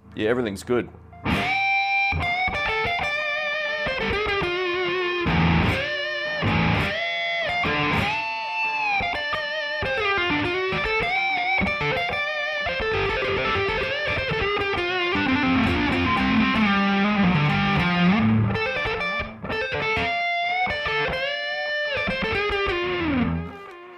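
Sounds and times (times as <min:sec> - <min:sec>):
speech: 0:00.2 - 0:01.5
distorted electric guitar with tape echo delay: 0:01.1 - 0:23.9.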